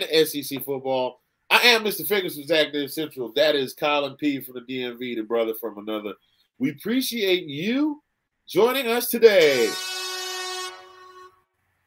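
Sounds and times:
speech: 0:00.0 - 0:09.9
air horn blast: 0:09.5 - 0:11.5.

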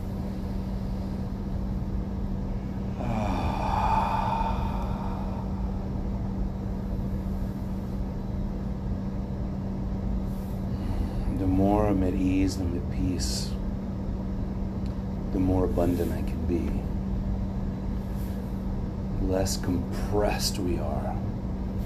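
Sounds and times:
steady low hum: 0:00.0 - 0:21.8
slow deep breath during a guided relaxation: 0:02.6 - 0:07.9, 0:10.3 - 0:11.4
speech: 0:12.1 - 0:13.5, 0:15.3 - 0:16.9, 0:19.3 - 0:21.2.

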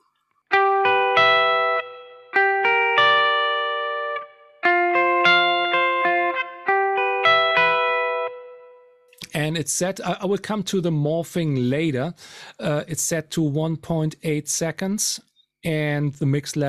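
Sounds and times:
clean electric guitar through rectifier amp strumming chords with reverb: 0:00.5 - 0:09.1
speech: 0:09.4 - 0:16.6.

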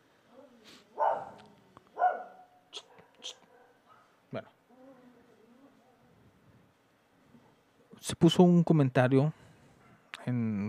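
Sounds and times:
dog barking: 0:00.9 - 0:04.2
speech: 0:04.3 - 0:04.5, 0:08.1 - 0:09.4.

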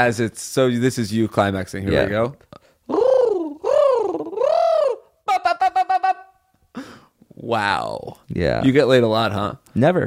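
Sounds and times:
speech: 0:00.0 - 0:03.0, 0:07.4 - 0:10.0
person imitating a pigeon cooing: 0:01.9 - 0:06.4.

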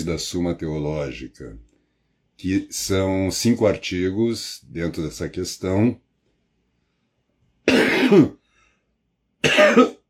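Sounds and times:
speech: 0:00.0 - 0:01.7, 0:02.4 - 0:06.0, 0:08.1 - 0:08.4, 0:09.4 - 0:10.0
cough: 0:07.6 - 0:08.4, 0:09.4 - 0:10.0.

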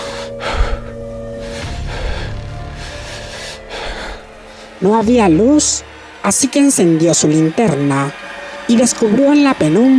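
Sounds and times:
heavy agitated breathing: 0:00.0 - 0:06.2
speech: 0:04.8 - 0:09.9.

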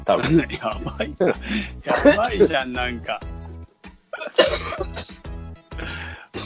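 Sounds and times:
laughter: 0:00.0 - 0:02.9, 0:04.2 - 0:05.2
speech: 0:00.1 - 0:03.3, 0:04.2 - 0:05.2
harsh throaty coughs: 0:04.2 - 0:05.3.

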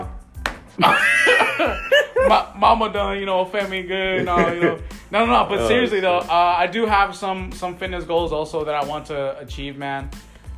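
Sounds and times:
hand slapping belly: 0:00.4 - 0:00.8
loud high drawn-out vocal whoops or laughter: 0:00.8 - 0:02.4
speech: 0:00.8 - 0:10.3.

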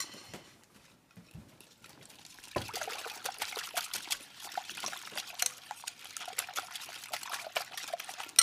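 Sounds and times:
water pouring into a bowl of beaten eggs: 0:01.8 - 0:08.4.

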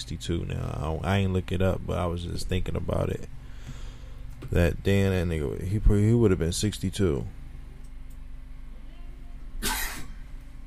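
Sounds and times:
speech: 0:00.0 - 0:03.4, 0:04.5 - 0:07.4
person coughing: 0:09.6 - 0:10.2.

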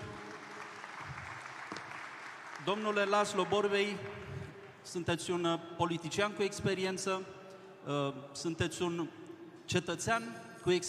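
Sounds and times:
audience applause: 0:00.0 - 0:04.4
speech: 0:02.6 - 0:04.2, 0:04.8 - 0:10.8.

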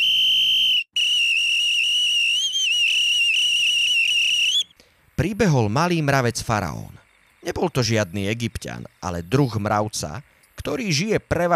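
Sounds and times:
loud piercing whistle: 0:00.0 - 0:04.7
speech: 0:05.2 - 0:11.5.

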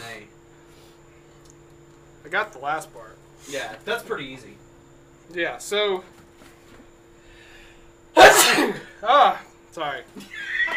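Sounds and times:
speech: 0:02.2 - 0:04.6, 0:05.3 - 0:06.2, 0:08.6 - 0:10.5
loud explosive sneeze: 0:08.2 - 0:09.0.

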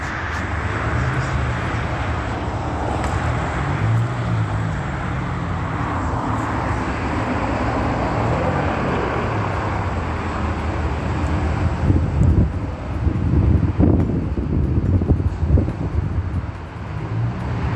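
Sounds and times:
backed-up road traffic roar: 0:00.0 - 0:17.7
cars passing by: 0:00.0 - 0:17.7.

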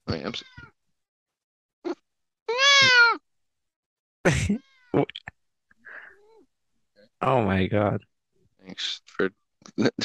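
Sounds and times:
speech: 0:00.1 - 0:00.6, 0:04.3 - 0:05.3, 0:07.2 - 0:08.1, 0:08.7 - 0:10.0
cat meowing: 0:02.5 - 0:03.2.

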